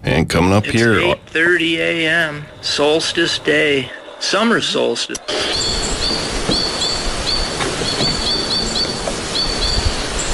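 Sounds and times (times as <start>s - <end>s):
steady hiss: 0.0s - 10.3s
speech: 0.2s - 5.7s
white-winged crossbill chattering in spruce trees: 5.3s - 10.3s.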